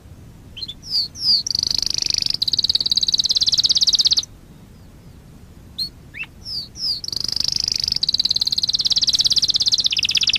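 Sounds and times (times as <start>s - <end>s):
Waterslager canary singing a high pulsed trill: 0.6s - 4.3s, 5.8s - 10.3s.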